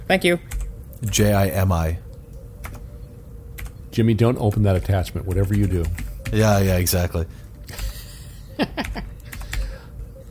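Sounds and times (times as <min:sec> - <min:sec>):
speech: 0:00.1 - 0:02.0, 0:04.0 - 0:07.8, 0:08.6 - 0:09.1
loud clacking of keys on a new computer keyboard: 0:00.5 - 0:01.6, 0:02.6 - 0:02.9, 0:03.6 - 0:07.0, 0:07.7 - 0:09.9.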